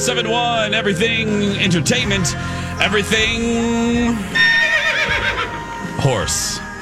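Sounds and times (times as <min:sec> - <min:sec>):
speech: 0:00.0 - 0:04.5, 0:06.0 - 0:06.6
horse neighing and snorting: 0:04.3 - 0:06.2.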